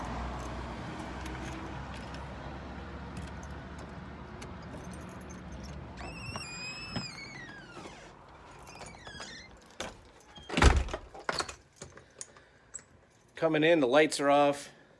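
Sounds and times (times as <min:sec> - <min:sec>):
keys jingling while unlocking a front door: 0:00.0 - 0:02.4, 0:03.1 - 0:07.2, 0:08.3 - 0:13.4
low rumble of passing traffic outdoors: 0:00.0 - 0:10.2
speech: 0:13.4 - 0:14.8.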